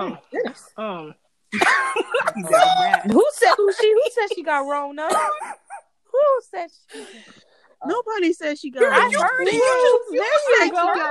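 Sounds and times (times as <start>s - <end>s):
speech: 0.0s - 11.0s
loud cough: 1.5s - 2.7s, 3.7s - 5.8s
laughter: 1.6s - 4.4s.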